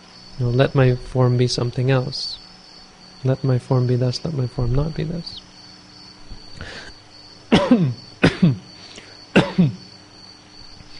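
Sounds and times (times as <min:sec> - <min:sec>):
steady high hum: 0:00.0 - 0:10.9
speech: 0:00.4 - 0:02.4, 0:03.2 - 0:05.4, 0:07.7 - 0:08.7, 0:09.6 - 0:09.8
faint throat-clearing rasp: 0:07.5 - 0:08.7, 0:09.4 - 0:09.9
harsh coughs: 0:07.5 - 0:08.7, 0:09.3 - 0:09.9.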